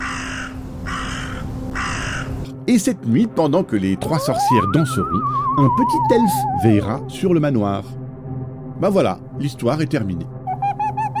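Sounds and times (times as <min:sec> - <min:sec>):
crows cawing harshly: 0:00.0 - 0:02.5
speech: 0:02.7 - 0:08.0, 0:08.8 - 0:10.4.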